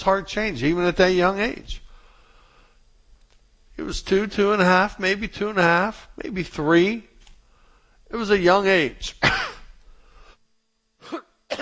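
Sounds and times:
speech: 0.0 - 1.8, 3.8 - 7.1, 8.1 - 9.5
person coughing into a microphone: 9.2 - 9.8, 11.0 - 11.6.

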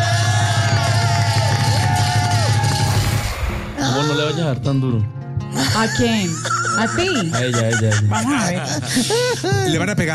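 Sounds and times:
large audience cheering and applauding: 0.0 - 3.6
speech: 4.5 - 10.1
laughter: 5.6 - 10.1.

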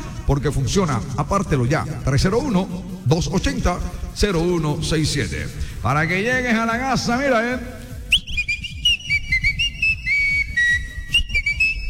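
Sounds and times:
rhythmic low-pitched backing beat: 0.0 - 11.8
speech: 0.3 - 7.8
person whistling a lively bright tune in a coffee advertisement: 8.1 - 11.8.

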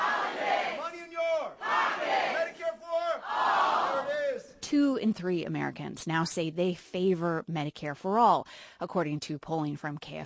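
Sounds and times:
large indoor town hall crowd chanting a campaign slogan: 0.0 - 4.5
speech: 4.7 - 10.2.

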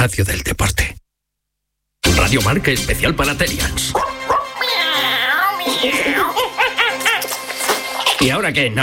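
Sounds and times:
speech: 0.0 - 0.9, 2.3 - 4.2, 5.8 - 6.4, 8.2 - 8.8
dog yipping and barking: 4.0 - 6.5
laughter: 5.0 - 8.2.

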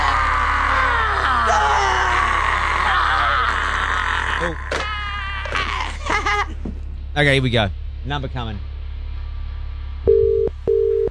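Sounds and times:
laughter: 0.0 - 6.8
faint low hum: 5.8 - 11.0
speech: 7.2 - 8.7
telephone ringing tone on the line: 10.1 - 11.0.

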